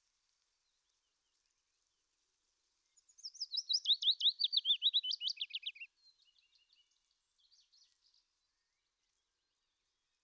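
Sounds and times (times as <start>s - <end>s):
willow warbler song of slurred whistles: 3.2s - 6.4s.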